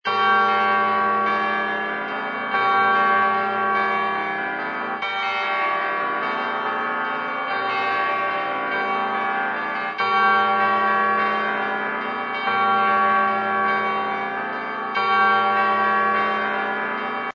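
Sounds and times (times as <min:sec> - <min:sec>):
Christmas bells ringing: 0:00.0 - 0:17.3.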